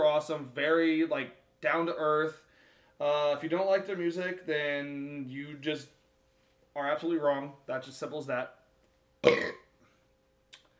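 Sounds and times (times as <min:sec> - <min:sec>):
speech: 0:00.2 - 0:02.4, 0:03.0 - 0:06.0, 0:06.8 - 0:08.6, 0:09.2 - 0:09.6
loud burp: 0:09.2 - 0:09.7.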